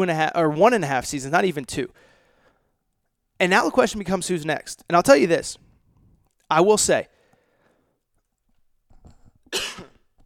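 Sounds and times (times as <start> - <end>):
speech: 0.0 - 2.1, 3.4 - 5.6, 6.5 - 7.2, 9.5 - 9.9
short cough: 9.5 - 10.0.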